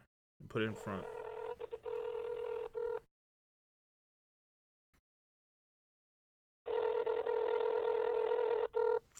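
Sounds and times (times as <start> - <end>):
speech: 0.5 - 1.2
Android phone ringtone for a call: 0.7 - 3.0, 6.7 - 9.1.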